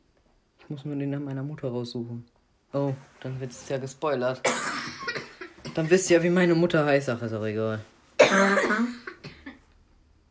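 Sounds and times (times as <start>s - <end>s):
speech: 0.7s - 4.7s, 5.8s - 9.0s
person in a harsh coughing fit: 4.4s - 5.9s, 8.2s - 9.7s.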